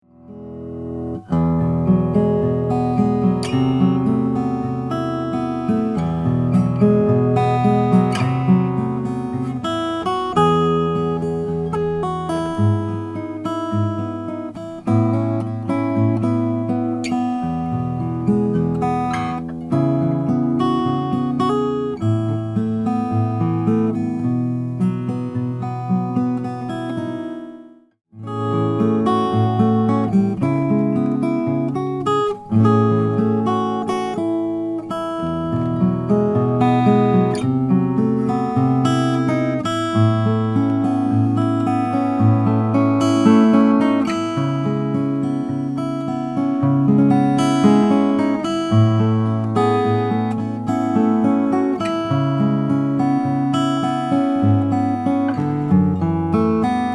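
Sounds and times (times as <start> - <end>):
Taylor 612 acoustic guitar: 0.0 - 56.9.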